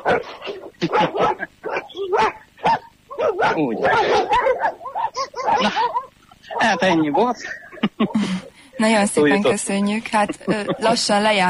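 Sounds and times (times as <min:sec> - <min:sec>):
several dogs barking with sharp yaps, woofs and whining yips: 0:00.0 - 0:08.5, 0:10.4 - 0:11.1
speech: 0:00.1 - 0:01.5, 0:03.6 - 0:04.5, 0:06.7 - 0:07.6, 0:08.2 - 0:11.4
laughter: 0:00.8 - 0:02.3, 0:03.4 - 0:04.6, 0:05.2 - 0:08.6, 0:09.2 - 0:11.4.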